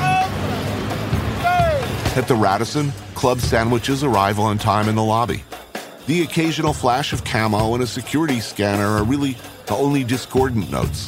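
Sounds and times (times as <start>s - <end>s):
busy city street traffic in Libya: 0.0s - 5.7s
speech: 2.2s - 11.0s.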